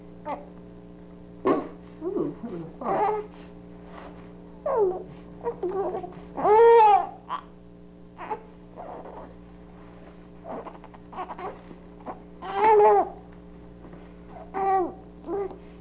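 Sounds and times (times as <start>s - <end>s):
infant whimpering with lips shut tight: 2.5s - 3.3s, 4.7s - 7.5s, 8.2s - 9.3s, 10.4s - 13.2s, 14.3s - 15.6s.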